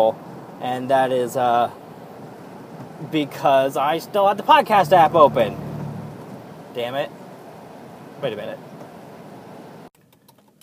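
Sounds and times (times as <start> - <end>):
speech: 0.0 - 1.8, 3.0 - 5.6, 6.8 - 7.2, 8.2 - 8.6
truck passing by: 4.7 - 7.0.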